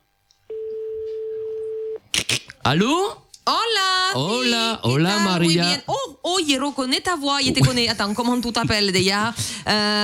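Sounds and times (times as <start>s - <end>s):
telephone ringback tone on a call: 0.5s - 2.0s
speech: 2.6s - 10.0s.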